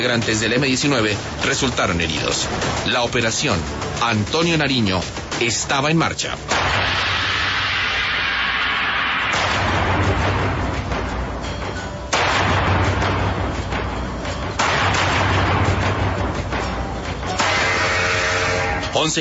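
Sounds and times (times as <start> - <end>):
speech: 0.0 - 7.1, 19.0 - 19.1
loud dense bursts of gunfire: 6.5 - 7.9, 9.3 - 10.7, 12.1 - 13.6, 14.6 - 16.6, 17.4 - 18.8
heavy booming blasts: 6.5 - 18.8.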